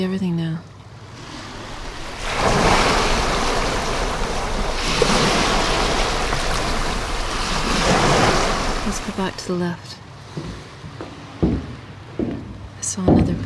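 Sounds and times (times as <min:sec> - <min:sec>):
speech: 0:00.0 - 0:00.7, 0:09.1 - 0:10.6, 0:13.0 - 0:13.4
ocean waves rushing: 0:01.0 - 0:09.8
gusty wind buffeting the microphone: 0:01.1 - 0:09.6.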